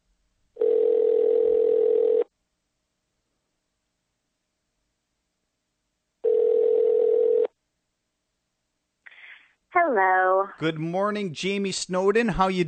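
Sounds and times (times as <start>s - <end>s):
telephone dial tone while placing a call: 0.6s - 2.3s, 6.2s - 7.5s
speech: 9.9s - 12.6s.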